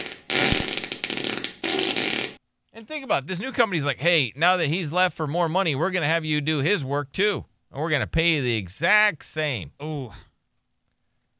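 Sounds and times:
raspy fart sound effect: 0.0 - 2.4
speech: 2.8 - 10.3.

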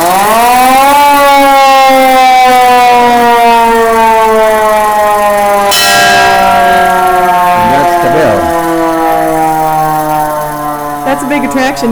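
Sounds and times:
hand-cranked siren on an American LaFrance fire engine wailing: 0.0 - 11.9
clanging fire engine bell: 5.1 - 11.4.

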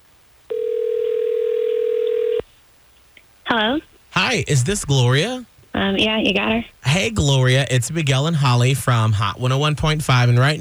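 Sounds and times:
telephone dial tone while placing a call: 0.5 - 2.4
speech: 3.6 - 10.5.

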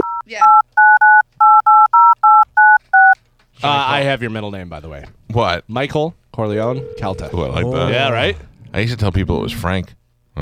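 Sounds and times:
telephone keypad dialing tones: 0.0 - 3.2
speech: 4.1 - 10.4.

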